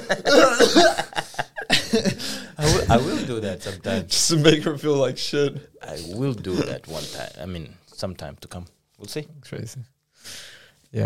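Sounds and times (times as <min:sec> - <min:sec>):
voice imitating someone choking and coughing: 0:00.0 - 0:01.2, 0:06.5 - 0:07.1
laughter: 0:00.0 - 0:04.4
speech: 0:00.1 - 0:01.1, 0:02.9 - 0:11.0.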